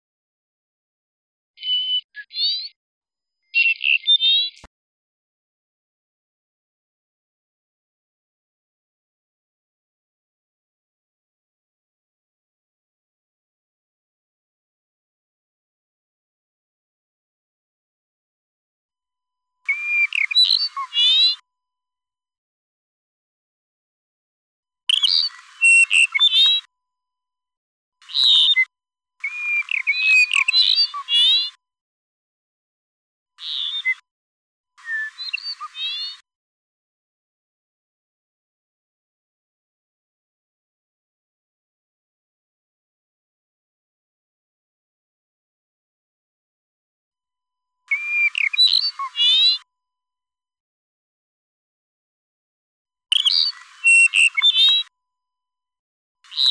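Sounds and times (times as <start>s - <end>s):
song of a threatened species: 1.6s - 2.8s, 3.5s - 4.7s, 19.7s - 21.4s, 24.9s - 26.7s, 28.0s - 31.6s, 33.4s - 34.0s, 34.8s - 36.2s, 47.9s - 49.6s, 53.1s - 54.9s.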